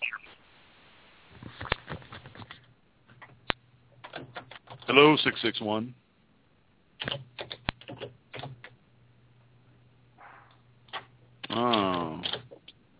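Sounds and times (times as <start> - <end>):
low steady hum: 0.0 - 12.9
clicky computer keyboard typing heard through a phone line: 4.0 - 5.0, 7.0 - 8.8, 10.9 - 12.8
speech: 4.9 - 6.0
voice: 11.5 - 12.4.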